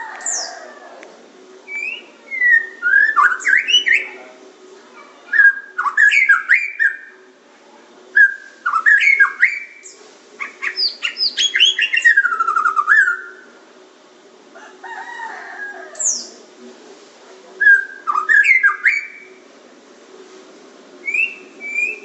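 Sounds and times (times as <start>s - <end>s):
Oriental magpie-robin song with whistled phrases and buzzy trills: 1.7s - 4.2s, 5.3s - 7.1s, 8.2s - 13.4s, 16.0s - 16.4s, 17.6s - 19.3s, 21.0s - 22.0s.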